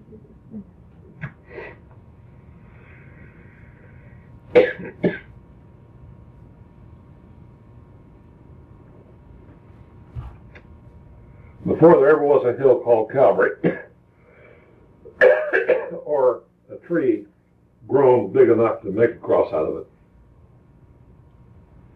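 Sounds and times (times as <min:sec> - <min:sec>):
person clearing throat: 0:04.6 - 0:05.3, 0:13.6 - 0:13.9, 0:15.1 - 0:16.2
person coughing: 0:04.6 - 0:05.3, 0:13.6 - 0:13.9, 0:15.2 - 0:16.1
speech: 0:11.8 - 0:13.8, 0:18.5 - 0:20.0.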